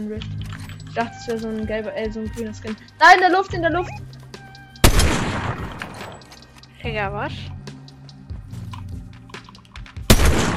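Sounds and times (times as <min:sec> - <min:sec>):
speech: 0:00.0 - 0:04.2, 0:06.8 - 0:07.6
video game gunshot: 0:04.8 - 0:06.0, 0:10.1 - 0:10.5.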